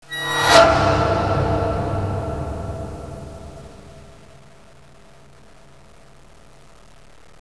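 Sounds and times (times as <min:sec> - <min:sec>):
scary sound: 0:00.0 - 0:04.5.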